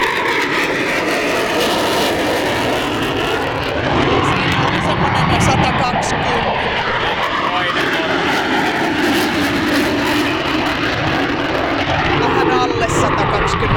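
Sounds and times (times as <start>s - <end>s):
Tornado fighter jet taking off: 0.0s - 13.7s.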